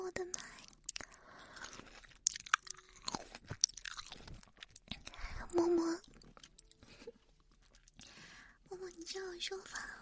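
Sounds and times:
grapes being chewed: 0.3s - 8.2s
speech: 9.4s - 10.0s.

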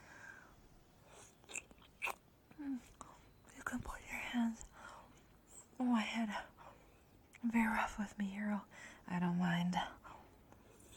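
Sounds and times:
soft hiss: 0.0s - 10.9s
wet smacking and slurping mouth sounds: 1.2s - 2.2s
speech: 6.1s - 6.5s, 7.5s - 10.0s.

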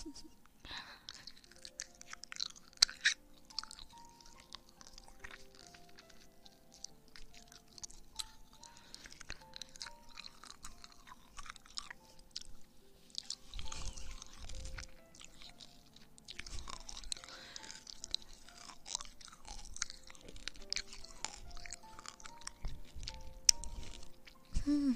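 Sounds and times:
chewing sour gummy candy: 0.6s - 24.9s.

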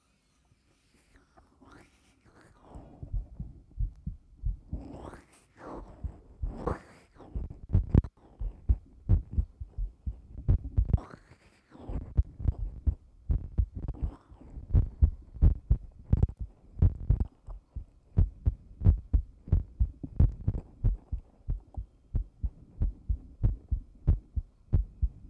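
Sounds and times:
fast heartbeat heard with an ear pressed close: 3.0s - 4.9s, 5.9s - 6.8s, 7.4s - 11.0s, 12.0s - 25.2s.

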